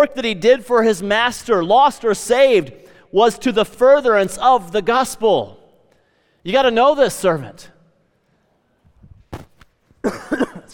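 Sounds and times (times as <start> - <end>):
speech: 0.0 - 5.6, 6.4 - 7.7, 10.0 - 10.7
speaker coughing: 10.0 - 10.7.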